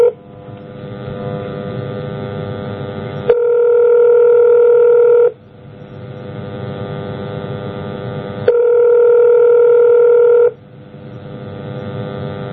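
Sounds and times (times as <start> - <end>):
outgoing phone call ringing tone alternating buzzy and smoother higher tones: 0.0 - 2.1, 3.3 - 5.4, 8.5 - 10.6.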